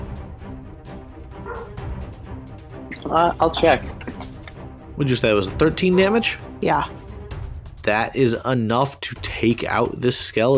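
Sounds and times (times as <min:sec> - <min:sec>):
dog barking: 0:01.4 - 0:01.8
speech: 0:01.4 - 0:01.9, 0:03.0 - 0:04.2, 0:05.0 - 0:07.0, 0:07.9 - 0:10.5.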